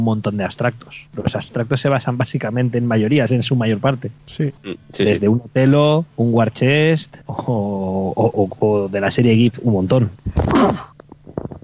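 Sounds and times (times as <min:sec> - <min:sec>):
speech: 0:00.0 - 0:10.9
person murmuring: 0:04.3 - 0:05.5
person sneezing: 0:10.4 - 0:10.9.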